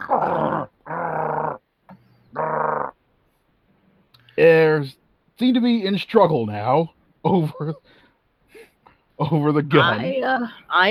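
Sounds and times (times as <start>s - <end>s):
dog growling and snarling: 0.0s - 1.6s, 2.3s - 3.0s
speech: 4.4s - 8.0s, 9.2s - 10.9s.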